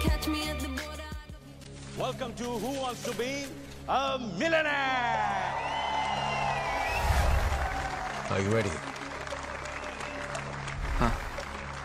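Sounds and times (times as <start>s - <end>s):
speech: 2.0s - 5.7s, 8.3s - 8.9s
studio audience applause at a television quiz show: 5.2s - 11.8s.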